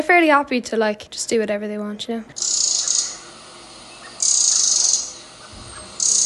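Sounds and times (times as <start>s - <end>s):
speech: 0.0s - 2.9s
crickets chirping outdoors: 2.4s - 6.2s.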